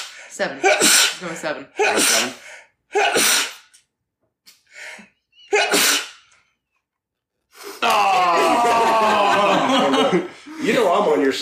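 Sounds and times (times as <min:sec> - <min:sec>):
loud sneezes: 0:00.0 - 0:03.7, 0:05.5 - 0:06.3
speech: 0:00.3 - 0:03.5, 0:11.0 - 0:11.4
laughter: 0:07.9 - 0:11.1.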